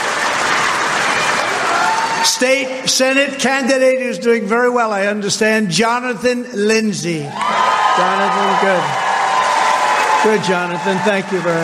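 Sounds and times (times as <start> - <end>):
crowd applauding state representatives being introduced: 0.0 - 3.0, 7.3 - 11.6
speech: 2.4 - 9.0, 10.2 - 11.6.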